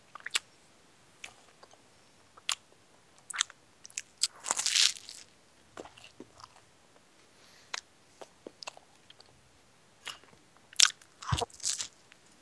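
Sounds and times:
munching on a grilled PB and J sandwich: 3.3 - 6.6, 10.0 - 12.0.

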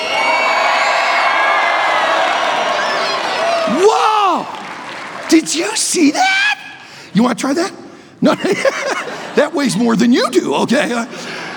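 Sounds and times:
high-pitched whoops: 0.0 - 4.6
audience cheering and yelling: 0.0 - 6.8
speech: 3.8 - 4.6, 5.3 - 6.5, 7.1 - 11.4
laughter: 8.2 - 11.5.

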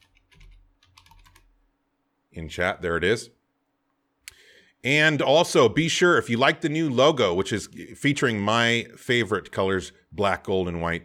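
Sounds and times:
typing on a computer keyboard: 0.0 - 1.6
speech: 2.3 - 3.4, 4.8 - 11.0.

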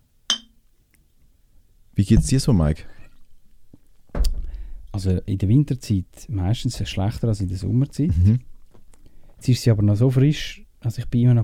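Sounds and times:
glasses clinking in a toast: 0.3 - 0.6
speech: 2.0 - 3.0, 5.0 - 8.5, 9.4 - 11.4.

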